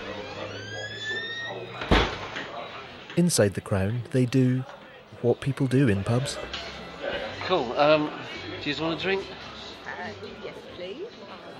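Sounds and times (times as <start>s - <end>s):
pub door opening with a clunk: 1.4s - 2.6s
speech: 3.2s - 6.7s, 7.5s - 9.4s.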